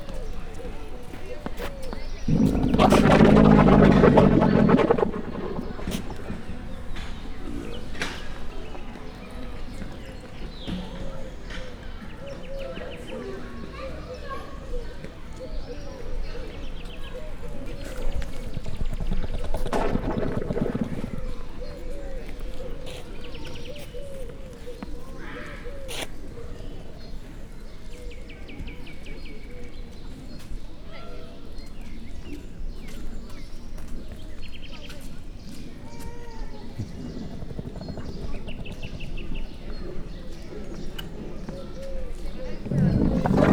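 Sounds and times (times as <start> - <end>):
female dromedary ruminating in a zoo: 2.2 - 8.4, 18.2 - 21.5, 36.0 - 43.5.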